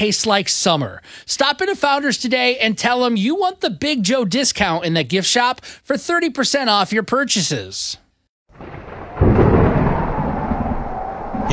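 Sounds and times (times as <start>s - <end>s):
speech: 0.0s - 8.0s
thunder rumbling from a spring storm: 8.5s - 11.5s.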